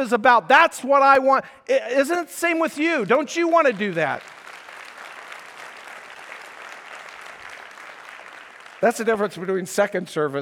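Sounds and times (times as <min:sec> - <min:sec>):
speech: 0:00.0 - 0:04.4, 0:08.8 - 0:10.3
congregation applauding: 0:03.0 - 0:09.7.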